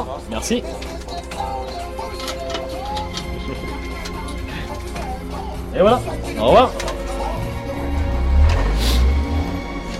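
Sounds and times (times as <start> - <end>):
speech: 0.2 - 1.5, 5.8 - 6.9
steady low rumble of traffic: 2.8 - 9.9
car passing with tire hiss: 7.5 - 9.9.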